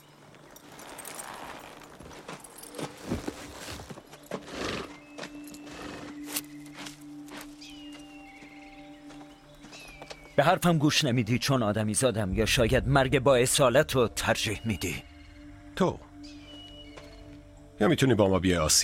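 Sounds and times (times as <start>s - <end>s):
horse hoof clops as riders dismount: 0.5s - 10.4s
speech: 10.4s - 15.1s, 15.8s - 16.1s, 17.8s - 18.8s.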